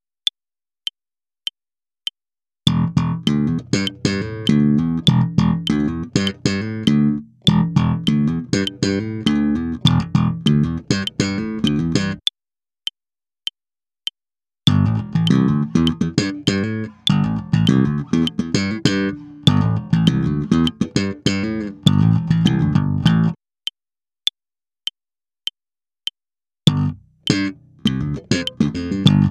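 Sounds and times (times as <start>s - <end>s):
slap electric bass: 2.7s - 12.2s, 14.7s - 23.4s, 26.7s - 29.3s.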